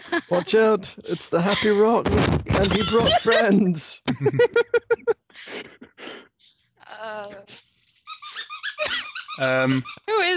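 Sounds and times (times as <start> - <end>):
laughter: 0.0 - 6.0, 8.8 - 9.9
speech: 0.2 - 5.7, 6.9 - 7.7, 8.4 - 10.3
squeaky turtle toy squeezed at a dog: 2.6 - 3.4, 7.5 - 10.3.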